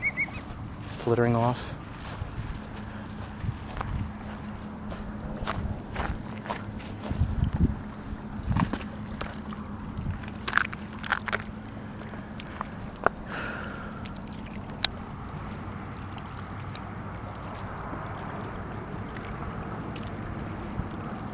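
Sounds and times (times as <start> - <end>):
gentle waves lapping against shore rocks: 0.0 - 21.3
low rumble of open water: 0.0 - 21.3
low rumble of wind: 0.0 - 21.3
speech: 1.0 - 1.8.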